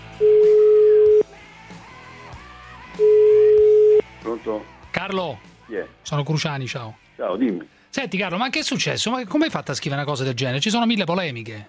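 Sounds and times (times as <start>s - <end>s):
telephone line tone while a call is being placed: 0.2s - 1.2s, 3.0s - 4.0s
speech: 4.4s - 11.6s.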